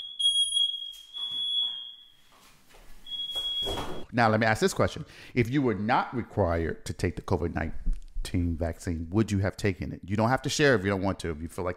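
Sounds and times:
smoke alarm set off by hookah smoke: 0:00.0 - 0:02.4, 0:03.0 - 0:04.1
speech: 0:04.1 - 0:11.7.

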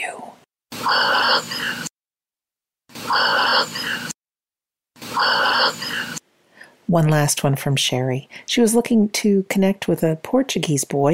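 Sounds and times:
dog breathing heavily: 0:00.8 - 0:01.9, 0:03.0 - 0:04.2, 0:05.0 - 0:06.2
speech: 0:00.9 - 0:01.9, 0:06.9 - 0:11.1.

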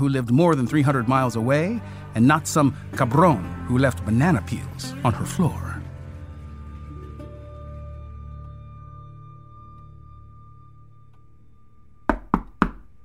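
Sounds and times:
speech: 0:00.0 - 0:05.7
police officer knocking on a door: 0:12.1 - 0:12.9.

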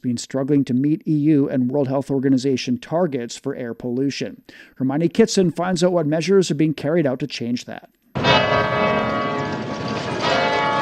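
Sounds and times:
speech: 0:00.0 - 0:09.2
church bells ringing from the bell tower of a Romanesque cathedral in Cremona, Italy: 0:08.2 - 0:10.8.

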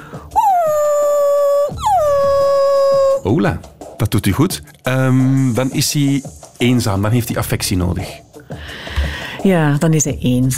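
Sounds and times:
dog howling: 0:00.3 - 0:03.3
speech: 0:03.2 - 0:08.8, 0:09.4 - 0:10.5.

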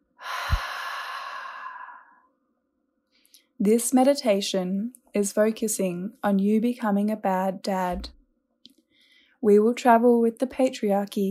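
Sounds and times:
breathy exhale: 0:00.2 - 0:02.2
speech: 0:03.6 - 0:08.2, 0:09.4 - 0:11.3
low thump: 0:07.9 - 0:08.2.

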